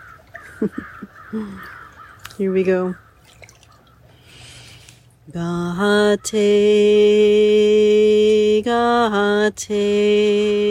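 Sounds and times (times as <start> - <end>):
raven cawing: 0.0 - 4.3
speech: 0.6 - 1.8, 2.4 - 3.0, 5.3 - 10.7.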